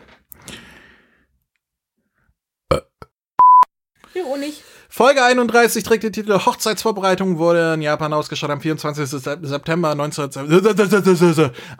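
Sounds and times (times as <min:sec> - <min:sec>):
raspy burp: 0:02.7 - 0:03.2
short steady electronic beep: 0:03.4 - 0:03.7
speech: 0:04.2 - 0:11.7.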